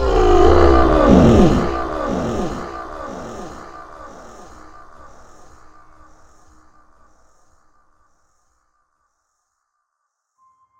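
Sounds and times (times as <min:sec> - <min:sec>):
deep creature roar echoing into a deep pit: 0:00.0 - 0:05.5.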